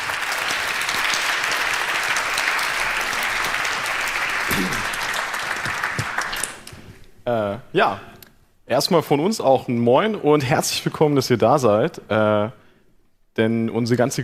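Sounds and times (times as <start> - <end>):
audience applauding speakers at a talk: 0.0 - 6.9
speech: 7.3 - 8.1, 8.7 - 12.6, 13.4 - 14.2.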